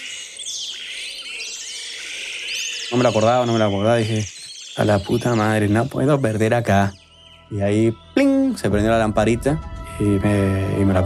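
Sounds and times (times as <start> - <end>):
yellow-rumped marshbird Pseudoleistes guirahuro calling: 0.0 - 11.0
speech: 2.9 - 11.0.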